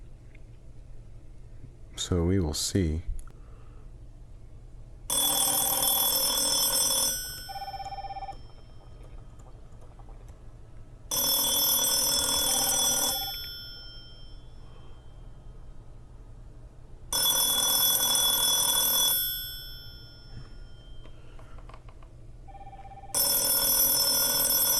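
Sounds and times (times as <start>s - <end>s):
speech: 2.0s - 3.1s
old-fashioned telephone bell ringing for an incoming call via ATA adapter and PBX: 5.1s - 9.3s, 11.1s - 15.5s, 17.1s - 21.4s, 22.5s - 24.7s.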